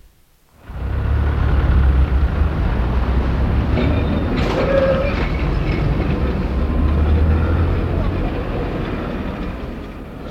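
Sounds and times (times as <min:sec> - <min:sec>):
old electric tram rattling along tracks in Helsinki Finland: 0:00.7 - 0:10.2
brief metallic squeal of tram: 0:03.8 - 0:06.1.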